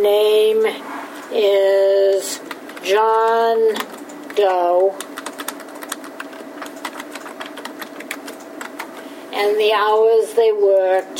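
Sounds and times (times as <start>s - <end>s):
speech: 0.0s - 1.8s, 4.4s - 5.0s, 9.4s - 11.1s
quick typing on a computer keyboard: 2.3s - 8.9s.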